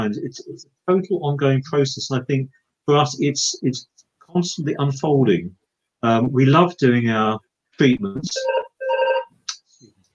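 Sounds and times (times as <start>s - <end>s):
speech: 0.0s - 8.7s
short buzzy electronic ring of a prayer hotline telephone: 8.4s - 9.3s.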